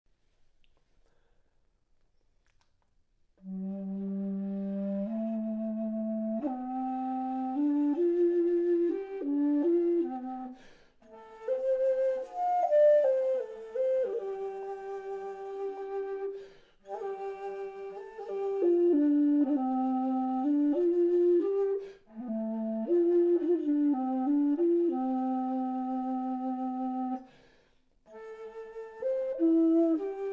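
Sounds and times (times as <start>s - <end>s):
bass dizi bamboo flute: 3.4s - 27.3s, 28.1s - 30.3s.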